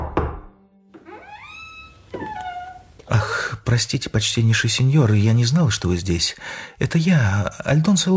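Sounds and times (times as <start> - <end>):
dull solid knocks on a door: 0.0 - 0.5
speech: 3.1 - 8.1.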